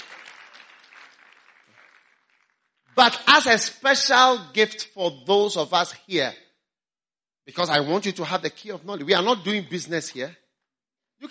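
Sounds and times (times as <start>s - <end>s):
audience applause at a talk: 0.0s - 3.3s
speech: 3.0s - 6.4s, 7.5s - 10.4s.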